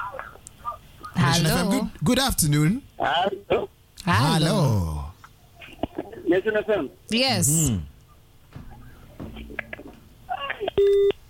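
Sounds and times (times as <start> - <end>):
speech: 1.2 - 5.0, 6.3 - 7.9
telephone line tone: 10.7 - 11.2.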